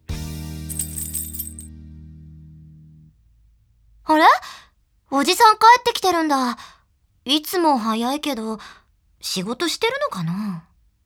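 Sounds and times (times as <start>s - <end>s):
keys jingling with low ringing resonance: 0.7s - 1.7s
speech: 4.1s - 10.7s.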